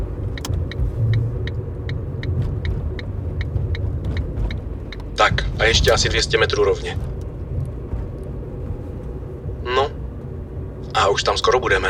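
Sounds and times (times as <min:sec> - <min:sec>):
car driving on a road heard from inside: 0:00.0 - 0:11.8
faint high clicking ticks: 0:00.2 - 0:05.2
speech: 0:05.3 - 0:07.1, 0:11.0 - 0:11.8.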